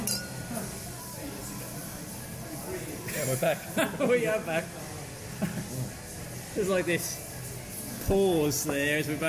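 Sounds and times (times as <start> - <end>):
pint glass and half-full glass clinking in a toast: 0.0 - 0.7
speech: 3.3 - 4.8, 6.6 - 7.3, 8.1 - 9.2.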